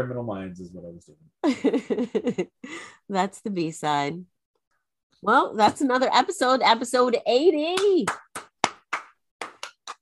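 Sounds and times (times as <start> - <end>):
speech: 0.0 - 4.3, 5.2 - 8.5
sharp crisp hand claps: 7.7 - 10.0.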